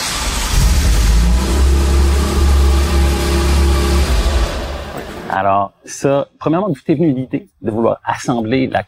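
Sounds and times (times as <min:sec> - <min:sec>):
Ferrari 288 GTO sports car engine revving: 0:00.0 - 0:05.3
speech: 0:05.4 - 0:08.8.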